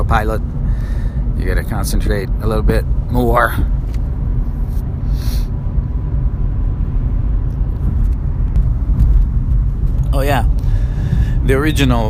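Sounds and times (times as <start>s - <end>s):
car driving through traffic with road rumble and engine drone: 0.0s - 12.0s
speech: 0.1s - 3.8s, 10.2s - 10.6s, 11.5s - 12.0s
short hissing burst: 5.0s - 5.5s.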